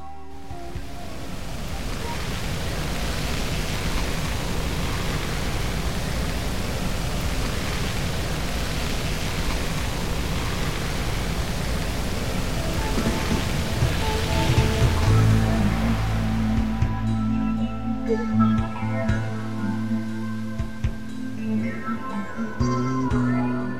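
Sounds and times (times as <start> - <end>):
low humming tonal drone underwater: 0.0 - 23.7
underwater rush of swell and current: 1.8 - 16.9.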